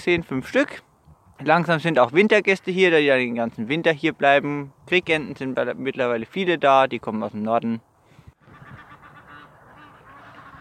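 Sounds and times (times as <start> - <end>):
speech: 0.0 - 7.9
Egyptian geese squabbling with harsh honks and cackles: 8.4 - 10.6.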